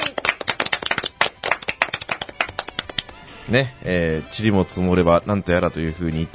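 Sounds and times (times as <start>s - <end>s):
small group clapping hands: 0.0s - 3.4s
speech: 3.5s - 6.3s.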